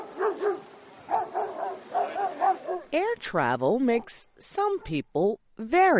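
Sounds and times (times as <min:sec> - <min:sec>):
dog barking in sharp mid-pitched yaps: 0:00.0 - 0:02.9
speech: 0:02.9 - 0:05.9.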